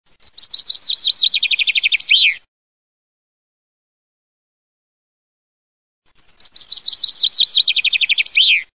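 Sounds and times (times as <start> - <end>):
chaffinch birdsong: 0.1 - 2.4, 6.1 - 8.7.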